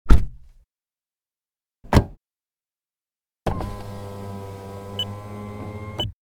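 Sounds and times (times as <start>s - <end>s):
car interior door foley: 1.9s - 2.2s, 3.5s - 6.2s.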